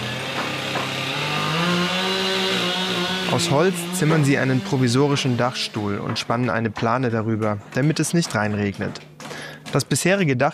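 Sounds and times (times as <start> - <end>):
motorized saw droning on wood: 0.0 - 6.6
speech: 3.3 - 9.1, 9.7 - 10.5.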